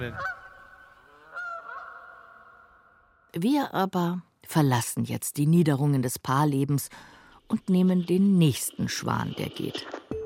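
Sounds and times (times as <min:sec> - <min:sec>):
speech: 0:00.0 - 0:00.4, 0:03.3 - 0:10.0
greylag geese honking: 0:00.0 - 0:02.9.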